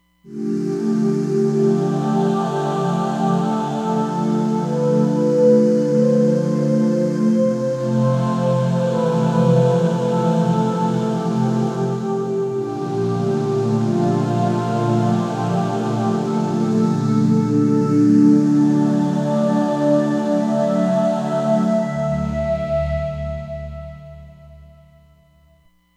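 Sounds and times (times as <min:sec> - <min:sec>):
synthesized choir ooh on a Roland Fantom XR: 0:00.0 - 0:25.3.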